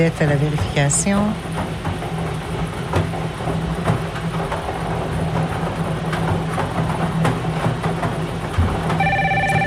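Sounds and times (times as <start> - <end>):
speech: 0.0 - 1.8
steady rumbling mechanical noise: 0.0 - 9.6
telephone ringing with a bright electronic trill: 9.0 - 9.6.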